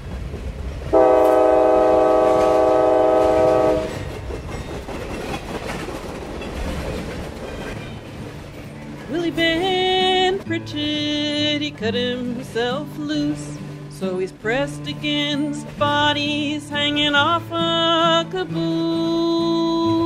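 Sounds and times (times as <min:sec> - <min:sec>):
train rumbling along the rails with rhythmic clatter: 0:00.0 - 0:18.0
train horn: 0:00.9 - 0:04.1
speech: 0:11.7 - 0:19.2.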